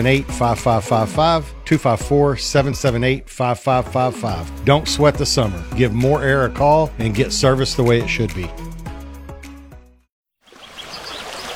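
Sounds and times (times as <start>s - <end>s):
speech: 0.0s - 8.6s
music: 0.0s - 10.1s
babbling stream water trickling and bubbling: 10.4s - 11.5s.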